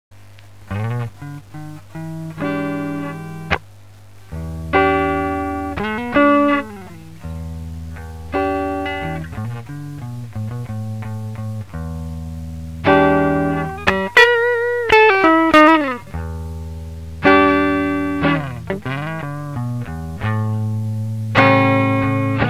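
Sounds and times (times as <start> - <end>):
clean electric guitar through guitar amplifiers: 0.7 - 22.4.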